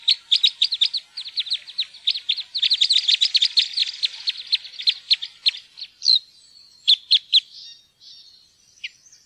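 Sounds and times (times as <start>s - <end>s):
Red crossbill calls: 0.0s - 6.2s.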